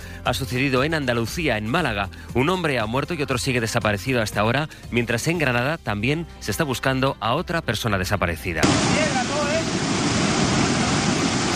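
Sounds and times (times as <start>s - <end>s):
speech: 0.2s - 9.8s
rushing floodwater roar: 8.6s - 11.5s.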